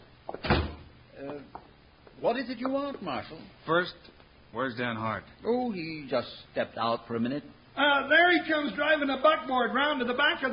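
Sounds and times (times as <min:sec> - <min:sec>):
door swinging shut with a solid thud: 0:00.4 - 0:00.9
speech: 0:02.2 - 0:10.5.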